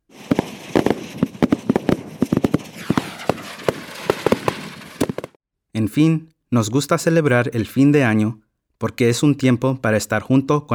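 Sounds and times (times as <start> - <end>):
fireworks crackling and banging at a New Year's Eve celebration: 0.0 - 5.4
speech: 5.8 - 10.7.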